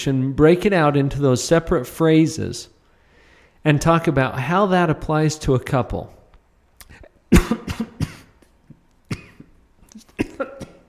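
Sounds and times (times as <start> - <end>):
speech: 0.0 - 2.8, 3.6 - 6.2, 6.9 - 7.9
person coughing: 6.9 - 8.5, 9.1 - 10.8.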